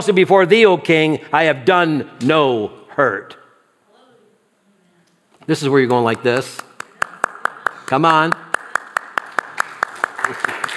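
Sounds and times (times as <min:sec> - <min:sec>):
speech: 0:00.0 - 0:03.4, 0:05.5 - 0:06.6, 0:07.9 - 0:08.4
church congregation clapping in time during a sermon: 0:05.9 - 0:10.7.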